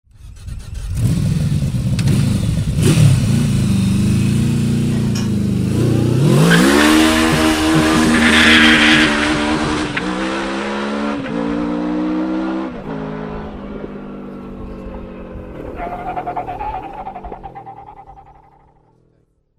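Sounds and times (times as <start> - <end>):
Yamaha VMAX motorcycle burnout with exhaust sound: 0.2 - 18.9.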